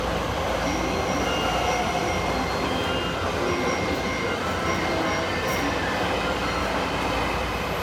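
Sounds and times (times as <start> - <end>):
Chuo-Sobu line train at Tsudanuma: 0.0 - 7.8.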